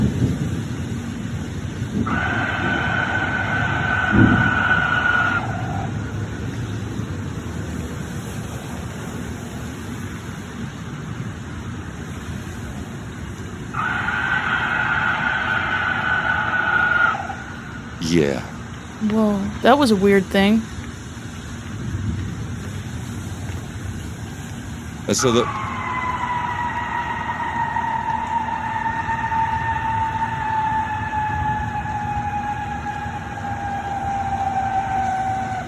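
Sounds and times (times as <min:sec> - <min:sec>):
deep rumble of a thunderstorm: 0:00.0 - 0:35.6
eerie buzzing tonal bursts: 0:01.9 - 0:06.6, 0:13.7 - 0:20.6, 0:25.1 - 0:35.6
speech: 0:19.2 - 0:20.7, 0:25.1 - 0:25.6.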